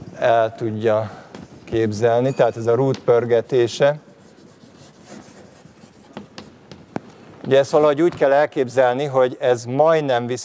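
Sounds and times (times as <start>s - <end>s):
speech: 0.2s - 4.1s, 7.5s - 10.4s
pen or chalk drawing a diagram on a board: 4.2s - 6.9s
sharp taps: 6.1s - 8.2s.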